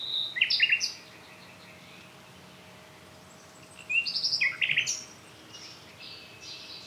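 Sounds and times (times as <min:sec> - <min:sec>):
Common nightingale Luscinia megarhynchos song phrases: 0:00.0 - 0:02.0, 0:03.6 - 0:06.8.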